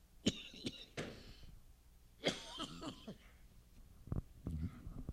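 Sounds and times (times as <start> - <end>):
person coughing during a sermon: 0.2 - 1.4, 2.2 - 3.4
throat clearing: 0.2 - 1.4, 2.2 - 3.4, 4.5 - 5.0.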